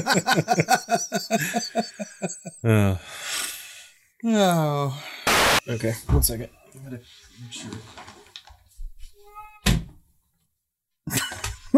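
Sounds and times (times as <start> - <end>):
laughter: 0.0 - 2.6
speech: 0.0 - 3.6, 4.2 - 8.0
door slamming shut: 9.6 - 10.0.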